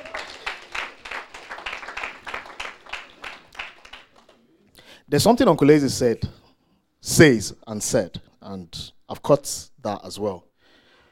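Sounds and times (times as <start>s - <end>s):
church audience clapping at a morning service: 0.0s - 4.5s
speech: 5.1s - 6.4s, 7.2s - 10.5s.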